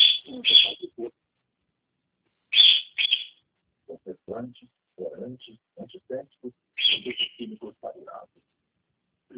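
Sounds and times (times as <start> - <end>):
small pet bird chirping, possibly a cockatiel: 0.0 - 1.0, 2.5 - 3.4, 6.8 - 7.6
speech: 4.4 - 7.2.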